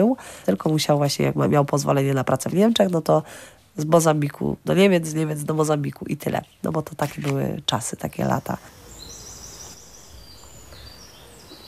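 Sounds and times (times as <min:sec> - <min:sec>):
speech: 0:00.0 - 0:08.8
soft outdoor hum: 0:00.0 - 0:11.6
birds singing: 0:07.8 - 0:11.6.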